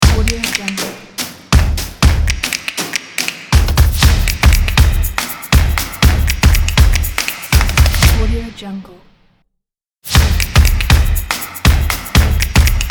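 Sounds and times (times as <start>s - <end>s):
groovy stomp music logo: 0.0s - 8.3s, 10.0s - 12.8s.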